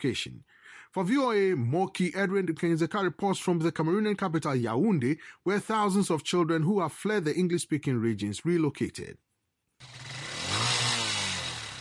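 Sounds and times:
speech: 0.0s - 9.2s
motorcycle taxi engine starting, idling and revving: 9.8s - 11.7s.

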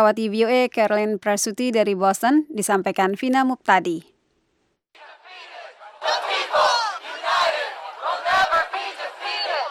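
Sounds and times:
speech: 0.0s - 4.1s
large protest crowd shouting in unison at a demonstration in Boston: 5.0s - 9.6s.

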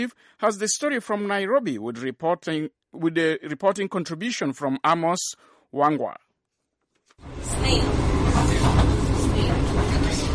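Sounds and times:
speech: 0.0s - 6.2s
passenger train rumbling along new railway tracks: 7.3s - 10.3s.

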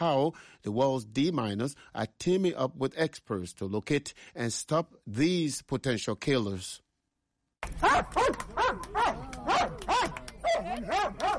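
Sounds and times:
speech: 0.0s - 6.8s, 7.6s - 11.3s
Belgian Malinois mine detection dog barking: 7.8s - 11.3s.

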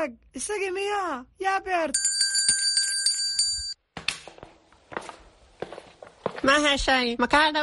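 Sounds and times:
speech: 0.0s - 2.1s, 6.4s - 7.6s
large metal bell with a short neck ringing: 2.0s - 3.8s.

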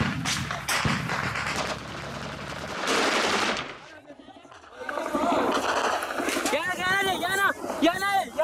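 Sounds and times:
rapid bursts of gunfire at barracks: 0.0s - 3.8s
voices talking and shouting: 3.8s - 8.4s.

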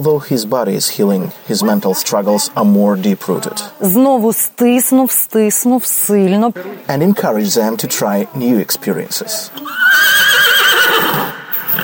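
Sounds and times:
speech: 0.0s - 11.8s
horse neighing: 9.6s - 11.8s.

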